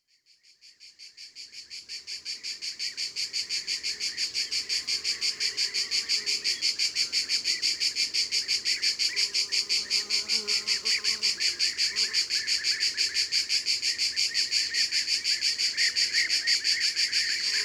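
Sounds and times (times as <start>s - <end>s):
common cicadas in Ardèche: 0.1s - 17.6s.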